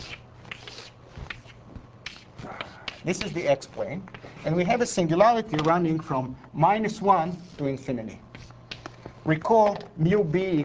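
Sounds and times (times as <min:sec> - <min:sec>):
chalk or marker drawing on a board during a lecture: 0:00.0 - 0:04.8, 0:07.0 - 0:08.8
speech: 0:03.0 - 0:08.3, 0:09.3 - 0:10.6.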